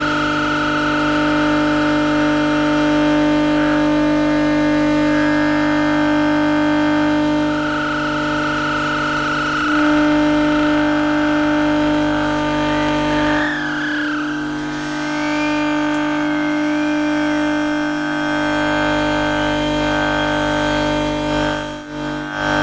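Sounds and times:
electromagnetic noise at a train station: 0.0 - 22.6.

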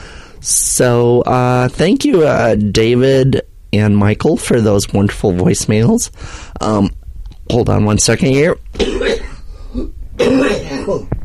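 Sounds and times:
speech: 0.4 - 11.1
person coughing: 8.8 - 11.1
person clearing throat: 8.8 - 11.2.

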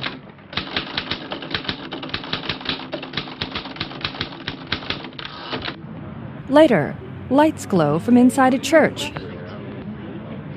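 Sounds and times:
typing at a small kitchen table at night: 0.0 - 5.7
speech: 6.5 - 9.2.

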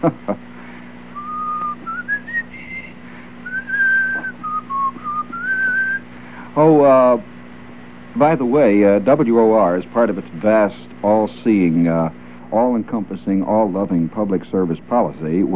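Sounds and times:
speech: 0.0 - 0.4, 6.6 - 7.3, 8.2 - 15.5
low steady hum: 0.0 - 15.5
person whistling a tune: 1.2 - 6.0.

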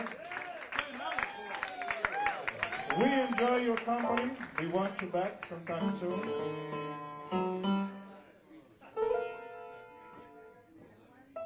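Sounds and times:
scattered audience applause: 0.0 - 6.6
speech: 3.0 - 7.5.

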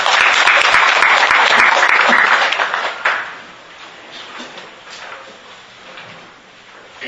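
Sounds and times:
crowd at a debate applauding a speaker: 0.0 - 3.5.

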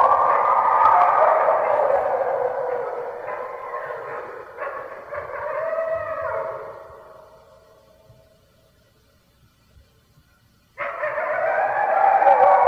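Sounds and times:
red wolf howling: 0.0 - 7.8, 10.8 - 12.6.

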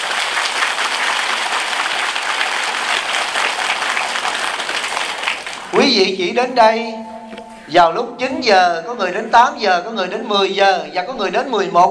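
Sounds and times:
sustained applause from a sizable audience: 0.0 - 5.8
speech: 5.8 - 7.1, 7.7 - 11.8.

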